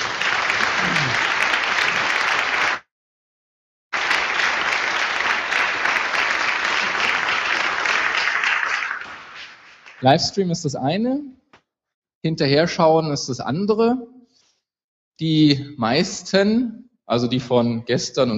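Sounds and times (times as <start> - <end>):
audience applause at a livestreamed event: 0.0 - 2.9, 3.9 - 10.1
speech: 10.0 - 11.4, 12.2 - 14.1, 15.2 - 18.3.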